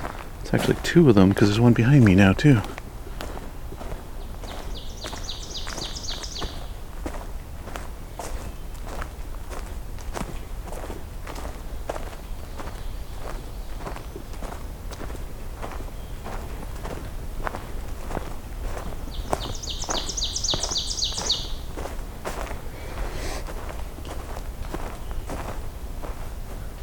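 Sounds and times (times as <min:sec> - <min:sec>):
ovenbird singing teacher song: 0:00.0 - 0:09.1, 0:11.3 - 0:23.4, 0:24.7 - 0:25.7
footsteps crunching on a woodland trail: 0:00.0 - 0:26.8
speech: 0:00.5 - 0:02.8.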